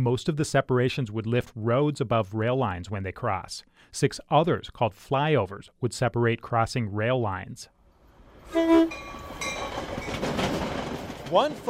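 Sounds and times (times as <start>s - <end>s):
speech: 0.0s - 7.8s, 8.5s - 9.6s, 11.3s - 11.6s
commuter train cars rumbling and rattling along the tracks: 8.2s - 11.6s
commuter train horn blasts: 8.5s - 9.2s.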